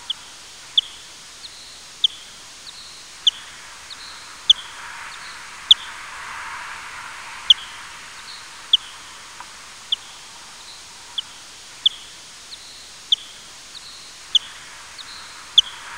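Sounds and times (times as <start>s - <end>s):
low steady noise: 0.0s - 15.9s
bat calls: 2.0s - 12.2s, 13.0s - 15.9s.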